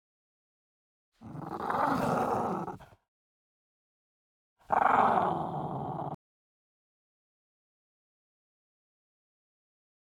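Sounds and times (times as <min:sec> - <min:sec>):
French bulldog snarling: 0:01.2 - 0:03.0, 0:04.7 - 0:06.2.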